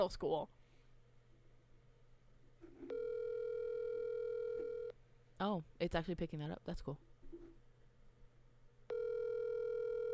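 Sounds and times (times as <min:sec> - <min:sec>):
speech: 0:00.0 - 0:00.6, 0:05.4 - 0:07.1
electronic telephone ring tone of an outgoing call: 0:02.9 - 0:04.9, 0:08.9 - 0:10.1.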